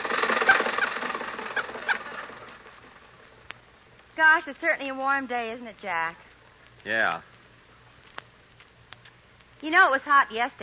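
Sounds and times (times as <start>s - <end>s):
car engine running while driving: 0.0s - 3.0s
speech: 4.2s - 6.2s, 6.8s - 7.3s, 9.6s - 10.6s.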